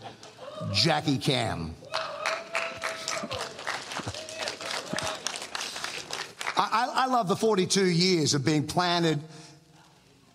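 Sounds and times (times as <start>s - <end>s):
voices cheering and whooping: 0.3s - 0.8s, 1.8s - 5.3s
speech: 0.6s - 1.8s, 6.6s - 9.4s
crowd clapping: 1.8s - 7.1s.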